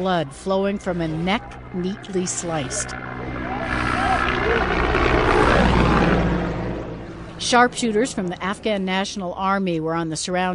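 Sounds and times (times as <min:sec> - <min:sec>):
speech: 0:00.0 - 0:05.9, 0:07.4 - 0:10.5
helicopter rotors and engine roaring: 0:00.0 - 0:10.5.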